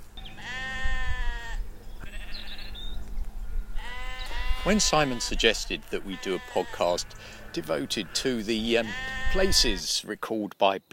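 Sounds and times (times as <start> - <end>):
sheep bleating: 0.2 - 2.8, 3.7 - 9.9
speech: 4.6 - 10.9.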